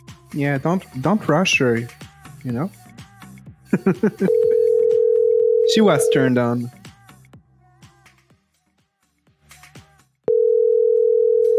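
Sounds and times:
speech: 0.3 - 2.8, 3.7 - 4.4, 5.8 - 6.8
laughter: 3.7 - 4.7
quick electronic phone tones beeping: 4.2 - 6.6, 10.3 - 11.5.

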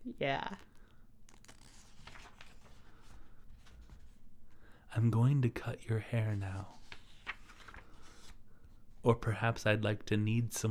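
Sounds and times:
speech: 0.0 - 0.7, 5.0 - 6.8, 9.0 - 10.6
pages of paper being turned: 0.5 - 4.2, 6.2 - 8.4.

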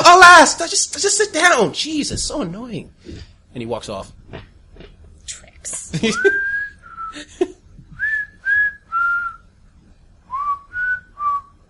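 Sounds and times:
speech: 0.4 - 4.5, 5.3 - 6.5
person whistling a short melody: 6.2 - 7.2, 8.0 - 9.4, 10.3 - 11.6.

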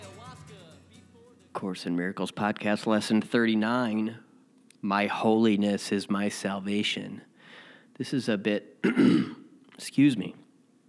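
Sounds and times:
speech: 1.6 - 4.2, 4.8 - 7.3, 8.0 - 10.4
person clearing throat: 8.8 - 9.5.

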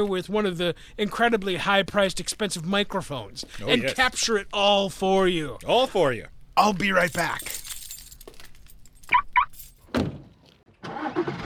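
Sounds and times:
speech: 0.0 - 7.6
car door closing in a parking lot: 9.9 - 10.4
2018 Dodge Charger V8 engine cranking and starting in a parking lot: 10.7 - 11.4.

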